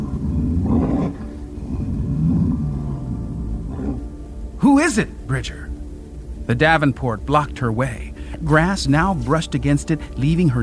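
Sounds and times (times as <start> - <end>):
deep guttural creature roar over a low growl: 0.0 - 4.2
speech: 4.6 - 5.7, 6.5 - 10.6.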